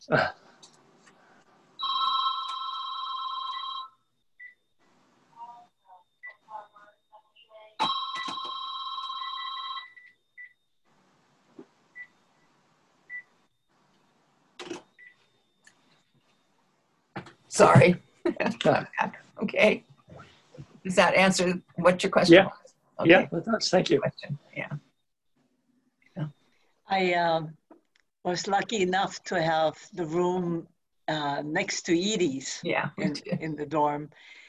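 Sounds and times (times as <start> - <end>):
speech: 0.0 - 0.4, 17.6 - 19.9, 20.9 - 24.4, 27.0 - 27.6, 28.2 - 34.4
phone ringing with a bright electronic tone: 1.8 - 4.6, 7.8 - 10.6.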